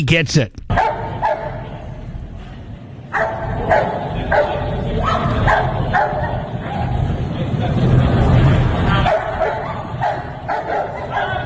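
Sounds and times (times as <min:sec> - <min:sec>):
speech: 0:00.0 - 0:00.6
faint crowd noise: 0:00.0 - 0:11.4
police dog barking: 0:00.7 - 0:01.8, 0:03.1 - 0:07.1, 0:08.9 - 0:11.4.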